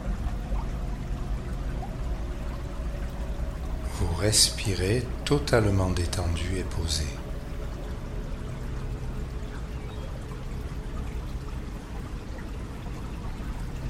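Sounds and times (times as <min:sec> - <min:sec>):
river water flowing: 0:00.0 - 0:13.8
speech: 0:04.2 - 0:07.2.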